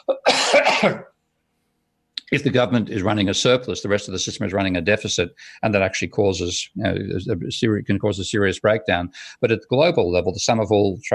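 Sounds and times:
harsh raspy dry coughing: 0.0s - 1.1s
speech: 0.8s - 1.1s, 2.3s - 11.1s.

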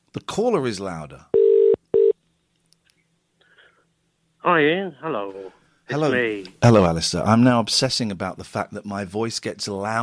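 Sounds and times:
speech: 0.3s - 1.4s, 4.4s - 10.0s
Skype call dialing and connecting tone beeps: 1.4s - 2.2s.

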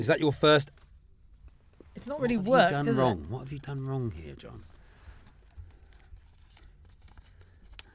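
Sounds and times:
speech: 0.0s - 0.8s, 2.0s - 4.7s
sheet of paper being creased and folded into a paper plane: 3.7s - 7.9s.

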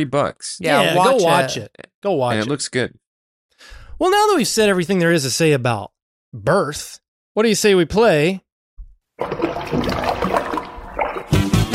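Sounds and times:
speech: 0.0s - 3.0s, 3.6s - 8.4s, 9.2s - 9.8s
bath water rushing and splashing: 9.2s - 11.7s.

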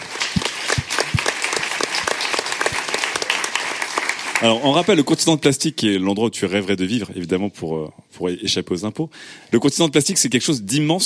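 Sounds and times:
crowd applauding: 0.0s - 5.2s
speech: 4.4s - 11.0s.

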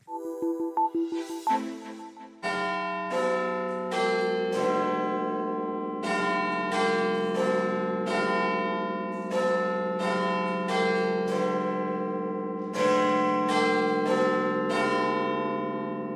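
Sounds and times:
short chime phrase of a clock tower bell: 0.0s - 2.9s
Westminster clock tower bell tolling: 1.3s - 16.0s.

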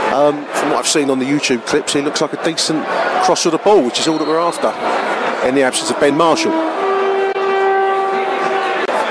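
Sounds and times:
speech: 0.1s - 6.8s
passing train horn: 5.5s - 8.9s.

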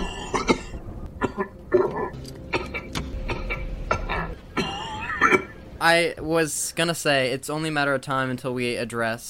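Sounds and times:
person coughing: 0.0s - 5.5s
speech: 5.8s - 9.2s.

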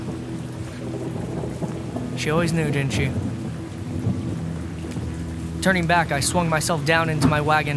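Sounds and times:
heavy rain: 0.0s - 7.7s
low continuous rumble of thunder: 0.0s - 7.7s
speech: 2.2s - 3.3s, 5.6s - 7.7s.

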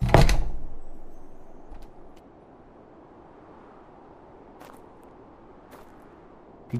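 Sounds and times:
front door slamming open: 0.0s - 0.6s.

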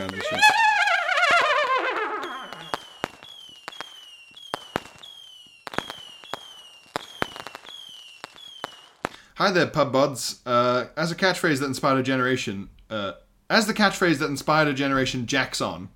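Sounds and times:
fireworks popping and banging with descending whistles: 0.0s - 9.2s
whistling firework rocket rising: 0.0s - 9.2s
speech: 9.4s - 15.9s.

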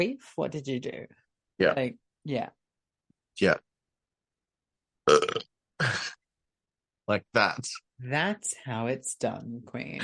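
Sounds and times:
speech: 0.0s - 2.6s, 3.4s - 3.7s, 5.1s - 6.2s, 7.1s - 10.0s
gurgly burps: 5.0s - 6.2s.

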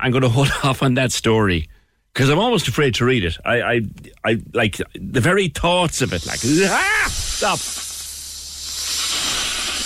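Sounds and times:
speech: 0.0s - 7.8s
snake hissing: 6.0s - 9.8s.

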